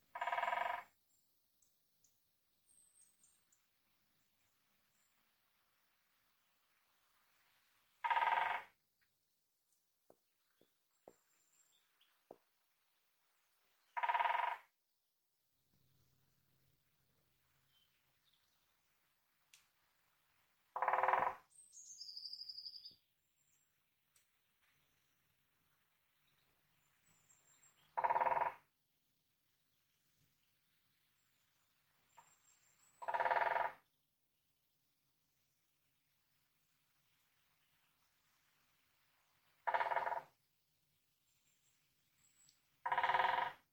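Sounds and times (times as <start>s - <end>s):
great spotted woodpecker drumming: 0.2s - 0.9s, 8.0s - 8.7s, 14.0s - 14.7s, 20.8s - 21.4s, 27.9s - 28.6s, 33.0s - 33.8s, 39.6s - 40.3s, 42.8s - 43.6s.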